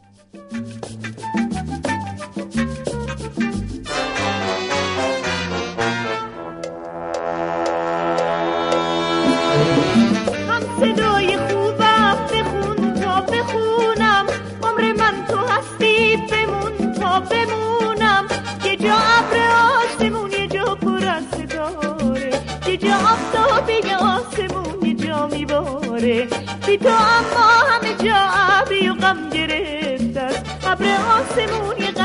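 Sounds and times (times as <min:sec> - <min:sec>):
dense instrumental accompaniment: 0:00.0 - 0:32.0
female singer singing a Persian song: 0:10.4 - 0:32.0.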